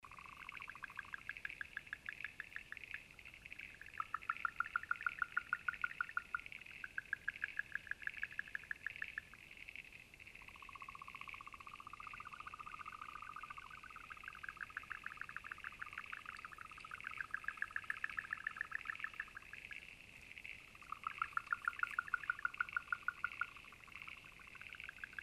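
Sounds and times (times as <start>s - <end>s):
Neobatrachus sudelli and N pictus calling at Eaglehawk Waterhole: 0.0s - 25.2s.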